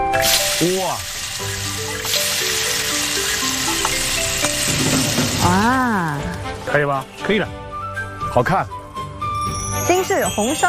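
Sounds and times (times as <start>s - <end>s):
hot oil poured over chili flakes to make chili oil sizzling: 0.2s - 7.2s
speech: 6.7s - 7.6s, 8.4s - 8.8s, 10.0s - 10.6s.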